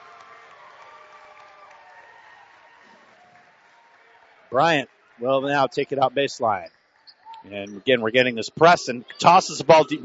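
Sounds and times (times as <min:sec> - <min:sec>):
crowd cheering and applauding in a large arena at a basketball game: 0:00.0 - 0:06.6
speech: 0:04.5 - 0:06.8, 0:07.4 - 0:10.0.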